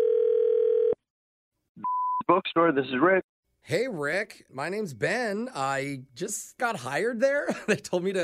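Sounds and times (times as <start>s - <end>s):
steady electronic telephone ringing tone: 0.0s - 1.0s
speech: 2.3s - 8.2s.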